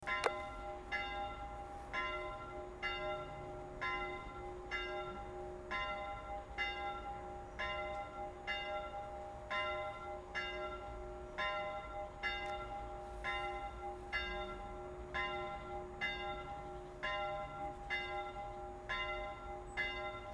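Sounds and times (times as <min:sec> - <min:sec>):
cemetery church bell: 0:00.0 - 0:20.3.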